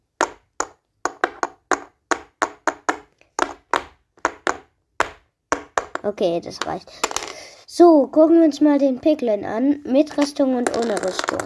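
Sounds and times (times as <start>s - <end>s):
toy figure rapped against a hard surface: 0.2s - 7.4s, 10.6s - 11.4s
speech: 6.0s - 7.2s, 7.8s - 11.4s.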